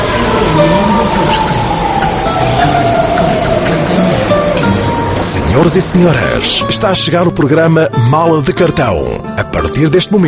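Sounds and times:
passenger train running on rails: 0.0 - 7.1
speech: 5.6 - 10.2.

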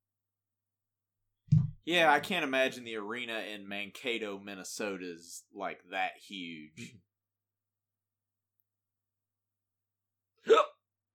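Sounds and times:
speech: 1.9 - 7.1, 10.4 - 10.7
single sharp hiccup: 10.4 - 10.8.

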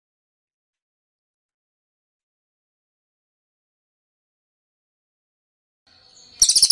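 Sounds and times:
bird squawking: 6.4 - 6.7.

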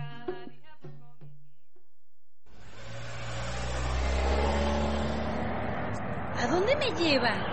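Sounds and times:
taxi car engine revving: 2.5 - 7.4
person talking: 6.4 - 7.4.

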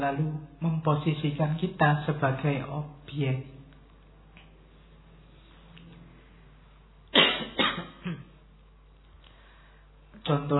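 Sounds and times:
speech: 0.0 - 3.6, 10.3 - 10.5
person coughing in a stylized way in front of an audience: 7.1 - 8.4.

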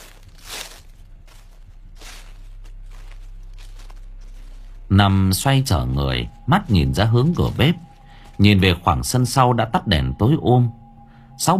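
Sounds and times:
footsteps walking across a yard at night: 0.0 - 8.8
steady low hum: 0.0 - 11.5
speech: 4.9 - 10.8, 11.4 - 11.5.

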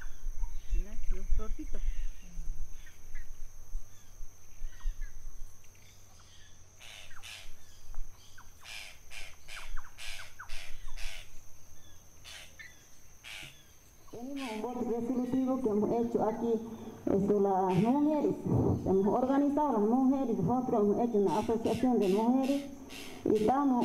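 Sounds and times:
hiss: 0.0 - 23.8
speech: 1.4 - 2.0, 14.7 - 23.8
small bird locally called tacataca squawking: 6.2 - 7.6, 8.2 - 11.3, 12.2 - 14.8, 17.6 - 18.1, 21.2 - 23.8.

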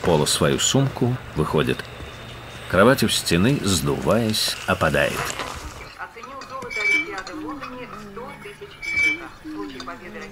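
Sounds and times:
speech: 0.1 - 2.0, 2.7 - 5.5
spoon scraping an empty plate at a table: 5.8 - 10.2.

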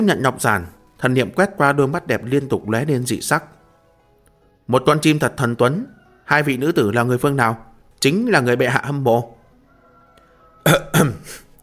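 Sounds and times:
speech: 0.0 - 3.6, 4.7 - 9.4, 10.6 - 11.4
voice imitating an old eunuch's dry cough: 10.6 - 11.6.

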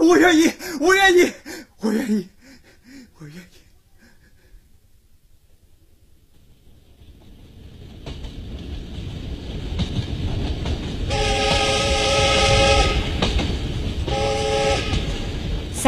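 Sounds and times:
speech: 0.1 - 2.4
southbound train rumbling along rails: 6.2 - 15.8
train horn blasts: 11.1 - 13.2, 14.1 - 15.3.

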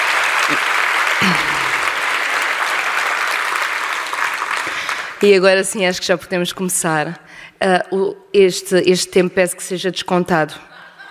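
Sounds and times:
audience applause in a packed hall at a youth conference: 0.0 - 5.2
speech: 0.5 - 1.6, 5.2 - 10.7.

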